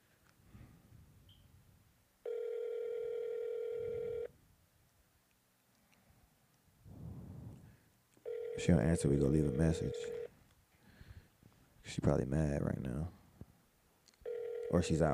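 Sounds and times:
buzzing telephone ringback tone on an outgoing call: 2.2s - 4.3s, 8.2s - 10.3s, 14.2s - 15.1s
speech: 8.6s - 10.2s, 12.0s - 13.2s, 14.7s - 15.1s.

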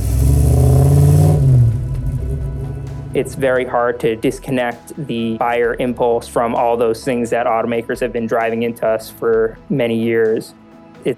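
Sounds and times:
V8 sports car engine revving: 0.0s - 4.4s
speech: 3.2s - 11.1s.

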